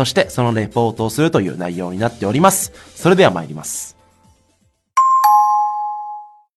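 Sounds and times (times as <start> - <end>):
speech: 0.0 - 4.0
two-note segment chime: 5.0 - 6.5.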